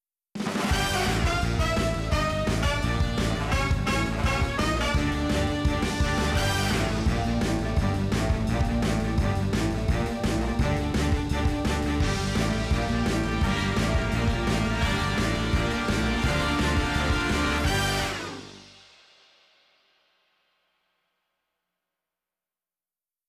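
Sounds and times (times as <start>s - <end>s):
opening theme music: 0.5s - 19.0s.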